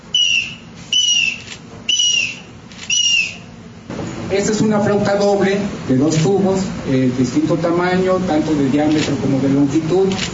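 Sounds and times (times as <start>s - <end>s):
triple whistle imitating an eagle's call: 0.1s - 3.5s
speech: 4.3s - 10.3s.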